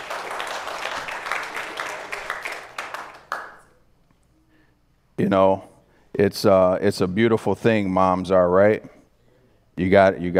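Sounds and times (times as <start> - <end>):
crowd applauding: 0.0 - 3.7
speech: 5.2 - 9.0, 9.8 - 10.3.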